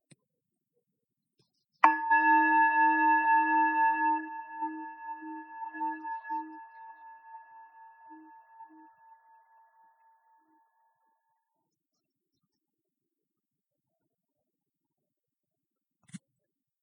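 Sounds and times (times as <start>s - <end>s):
meditation bell struck to start meditation practice: 1.8s - 10.6s.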